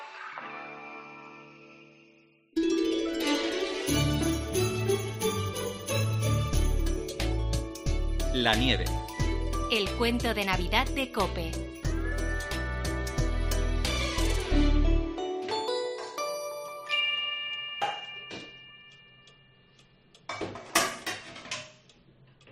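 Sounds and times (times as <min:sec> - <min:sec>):
chiming bell-like melody: 0:01.9 - 0:10.0, 0:11.6 - 0:13.8, 0:14.6 - 0:19.8
speech: 0:08.4 - 0:09.0, 0:09.7 - 0:11.8
pans and utensils clinking while frying eggs: 0:20.3 - 0:21.8.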